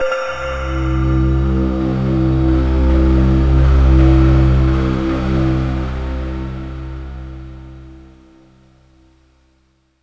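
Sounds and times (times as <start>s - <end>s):
Yamaha SY22 synthesizer: 0.0s - 6.9s.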